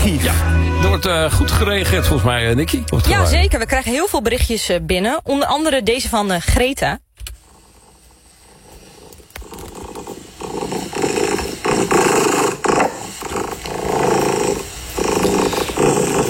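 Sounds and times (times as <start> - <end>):
speech: 0.2 - 7.0
contented house cat purring: 7.4 - 16.2.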